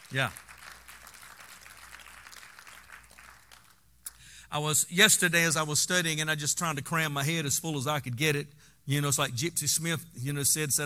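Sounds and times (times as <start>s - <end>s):
audience clapping: 0.0s - 3.9s
speech: 0.1s - 0.5s, 4.5s - 10.8s.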